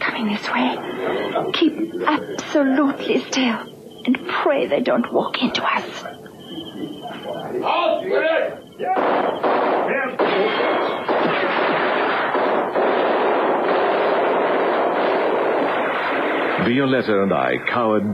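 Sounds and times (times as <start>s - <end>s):
speech: 0.2s - 6.2s, 6.8s - 9.5s, 16.7s - 18.1s
guns firing: 8.8s - 17.6s.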